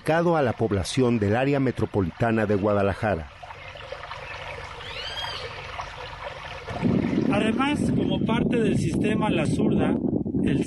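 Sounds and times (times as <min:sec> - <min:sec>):
speech: 0:00.0 - 0:03.4, 0:07.4 - 0:10.6
water trickling at a diversion dam: 0:00.0 - 0:08.7
high chirp: 0:04.8 - 0:05.5.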